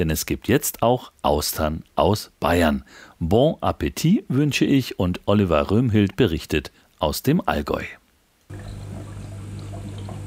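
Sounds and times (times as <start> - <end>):
speech: 0.0 - 8.8
circulation pumps humming low and steady: 8.5 - 10.2
filtered saltwater splashing into large oyster tanks in a factory hall: 8.5 - 10.2.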